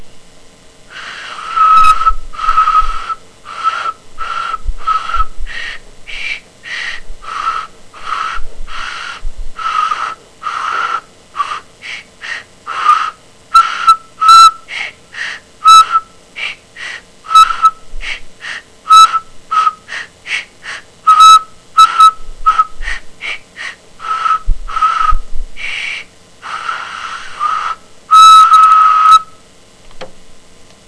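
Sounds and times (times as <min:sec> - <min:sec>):
sculpe whistle: 0:01.2 - 0:06.4, 0:12.7 - 0:14.7, 0:15.6 - 0:16.6, 0:17.3 - 0:17.8, 0:18.5 - 0:20.4, 0:21.1 - 0:23.0, 0:23.6 - 0:25.2, 0:25.9 - 0:29.4.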